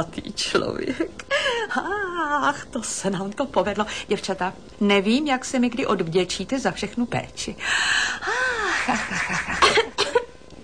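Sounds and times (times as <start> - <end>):
speech: 0.0 - 9.8
laughter: 8.6 - 10.0
young woman coughing: 9.5 - 10.6.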